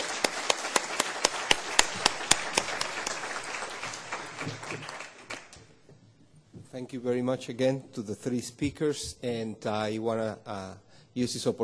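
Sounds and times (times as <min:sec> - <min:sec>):
audience applause: 0:00.0 - 0:05.7
one set of sharp steady claps: 0:00.0 - 0:05.7
speech: 0:06.8 - 0:11.6.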